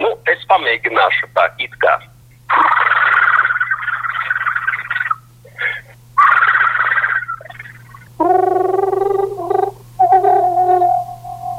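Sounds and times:
low steady hum: 0.0 - 11.5
speech: 0.5 - 2.8
person imitating a green toad's long trill: 6.2 - 11.5.

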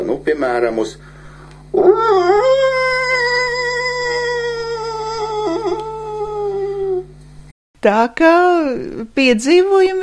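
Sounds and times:
speech: 0.2 - 2.7, 7.8 - 10.0
wolf pups howling in response: 1.8 - 7.1.

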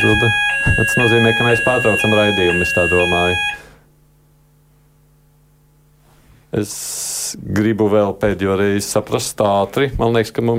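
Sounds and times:
speech: 0.0 - 3.6, 6.5 - 10.5
building alarm electronic beep: 0.0 - 3.8
faint low hum: 0.0 - 10.5.

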